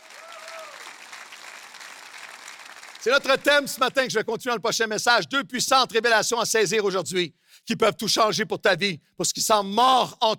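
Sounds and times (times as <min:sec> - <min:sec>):
congregation applauding: 0:00.0 - 0:04.0
speech: 0:03.0 - 0:10.3.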